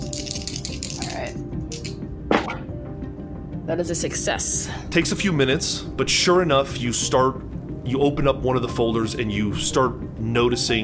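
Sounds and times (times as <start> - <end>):
dice rolled and clattering across a hard surface: 0.0 - 2.0
speech: 1.2 - 1.6, 3.7 - 10.8.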